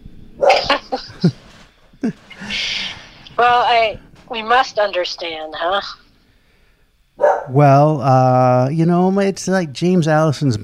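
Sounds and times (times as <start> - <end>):
dog barking: 0.4 - 1.0, 7.2 - 7.6
dog yelping: 0.4 - 1.2, 7.2 - 7.6
laughter: 0.5 - 1.4, 2.0 - 3.4
speech: 0.9 - 1.4, 3.4 - 6.0, 7.2 - 10.6.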